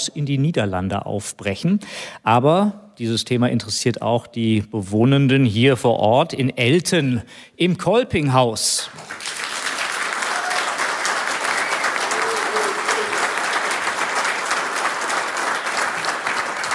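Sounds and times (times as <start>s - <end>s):
speech: 0.1s - 9.4s
indoor audience applause in a hall: 8.9s - 16.7s.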